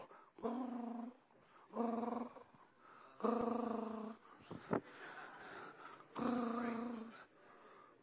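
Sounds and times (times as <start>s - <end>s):
lion purring and rumbling: 0.4s - 4.2s, 6.1s - 7.2s.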